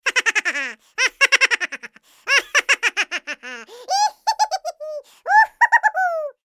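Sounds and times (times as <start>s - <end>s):
cat making laughing sounds: 0.0s - 6.4s.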